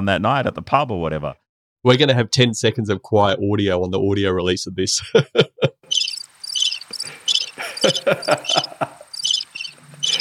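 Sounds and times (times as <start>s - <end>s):
speech: 0.0s - 5.5s, 7.8s - 9.0s
laughter: 5.0s - 5.8s, 7.0s - 9.2s
crickets chirping: 5.9s - 10.1s
scratchy insect ticks: 5.9s - 10.1s.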